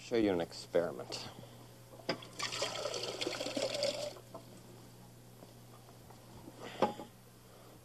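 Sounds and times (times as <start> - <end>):
speech: 0.1 - 1.5
water pouring into a crystal drinking glass: 2.2 - 4.2.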